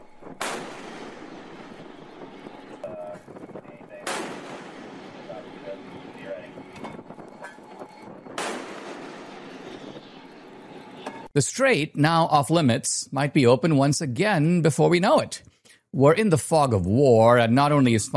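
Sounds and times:
gunfire from a vessel as disabling fire on a motor vessel: 0.0s - 7.3s, 8.1s - 11.2s
low rumbling noise: 0.0s - 11.3s
speech: 11.4s - 18.1s.

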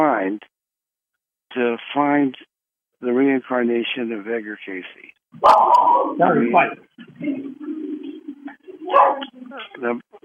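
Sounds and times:
speech: 0.0s - 0.5s, 1.5s - 10.2s
dog barking and yipping: 5.4s - 6.2s, 8.9s - 9.3s.

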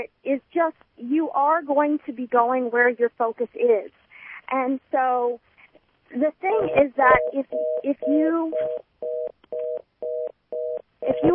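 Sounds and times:
speech: 0.0s - 5.5s, 6.1s - 11.3s
short evenly spaced beeps: 6.6s - 11.3s
telephone line tone: 6.6s - 11.3s.

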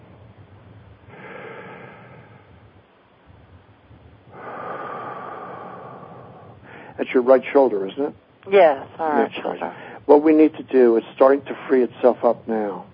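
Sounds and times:
deep slow breathing in and out during a guided breathing exercise: 0.3s - 7.1s, 9.7s - 10.1s
speech: 7.0s - 12.9s.

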